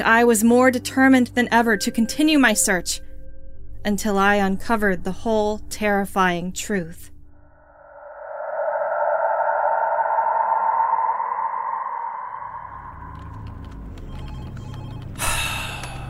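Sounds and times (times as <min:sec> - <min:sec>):
speech: 0:00.0 - 0:03.1, 0:03.8 - 0:07.1
steady whooshing drone: 0:07.6 - 0:13.8.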